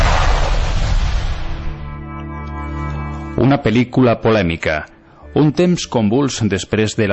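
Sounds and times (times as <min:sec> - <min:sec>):
loud firecracker-like explosion: 0:00.0 - 0:01.9
speech: 0:03.4 - 0:07.1.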